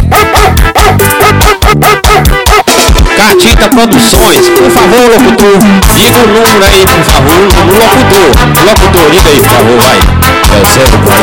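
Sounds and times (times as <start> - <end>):
dog barking loudly: 0.0 - 2.8
speech: 3.6 - 11.2.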